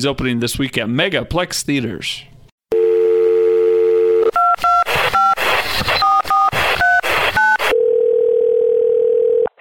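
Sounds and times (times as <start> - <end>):
speech: 0.0 - 2.4
telephone dial tone: 2.7 - 4.8, 7.4 - 9.5
telephone ringing tone: 2.7 - 5.4, 6.1 - 9.5.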